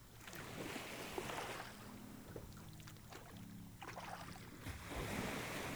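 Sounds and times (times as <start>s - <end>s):
soft water sloshing: 0.2s - 5.7s
shallow waves washing onto the sandy beach of a small island's lagoon: 4.6s - 5.7s.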